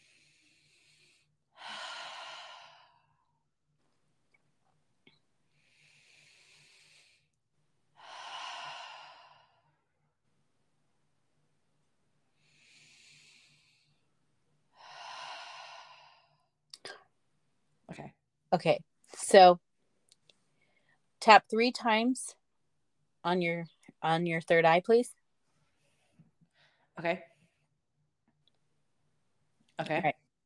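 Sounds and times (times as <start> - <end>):
deep slow breathing during a tarot reading: 0.0 - 3.3, 5.5 - 7.4, 8.0 - 9.9, 12.4 - 14.1, 14.7 - 16.5
speech: 18.0 - 19.6, 21.2 - 22.4, 23.2 - 25.2, 27.0 - 27.3, 29.8 - 30.2.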